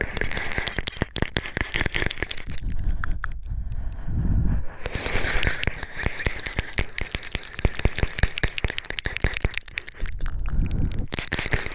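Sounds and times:
wet rapid mouth clicks and smacking: 0.0 - 11.7
heavy rough breathing: 2.4 - 8.4, 9.0 - 11.7
deep low rumbles: 2.5 - 4.9.

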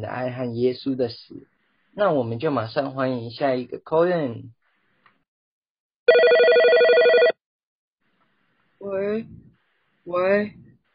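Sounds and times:
speech: 0.0 - 4.6, 8.8 - 9.4, 10.1 - 10.6
warbling electronic telephone ringing: 6.1 - 7.4.

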